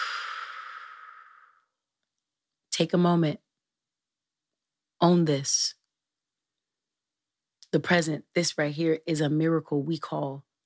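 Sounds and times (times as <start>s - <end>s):
long breath blown out through the mouth in a breathing exercise: 0.0s - 1.6s
speech: 2.8s - 3.4s, 5.0s - 5.8s, 7.7s - 10.5s.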